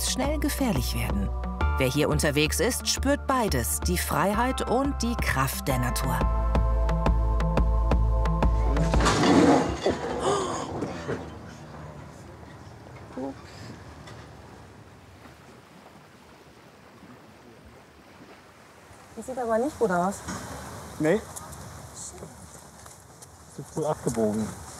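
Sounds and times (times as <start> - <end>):
loud low rumbling boat: 0.0 - 23.4
water noise: 0.0 - 24.7
speech: 0.2 - 6.4, 19.2 - 21.4, 23.8 - 24.6
boat crashing against a railing: 8.8 - 12.2.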